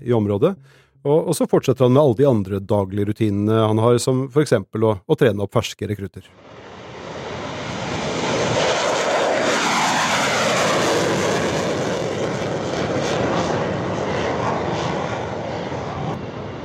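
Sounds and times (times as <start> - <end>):
speech: 0.0 - 6.6
low-flying military aircraft engine roaring past overhead: 6.4 - 16.6.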